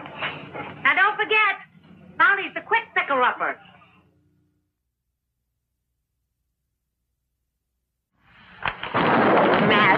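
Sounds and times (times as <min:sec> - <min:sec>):
speech: 0:02.4 - 0:03.7
thunder from a storm: 0:08.6 - 0:09.9.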